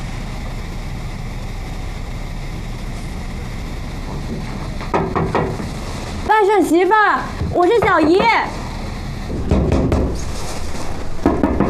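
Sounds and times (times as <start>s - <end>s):
firm knocking on a door: 4.9s - 5.6s, 7.4s - 8.5s, 9.3s - 10.2s, 11.2s - 11.6s
speech: 6.5s - 8.6s.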